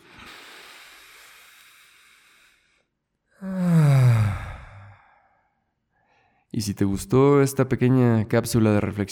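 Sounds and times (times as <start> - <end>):
deep breath in and out: 0.0 - 6.5
speech: 6.6 - 9.0.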